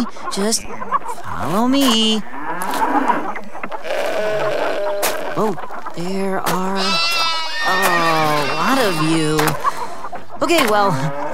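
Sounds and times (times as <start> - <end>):
speech: 0.0 - 3.3, 5.5 - 7.9, 8.8 - 9.6, 10.5 - 11.3
goats bleating: 2.1 - 9.8.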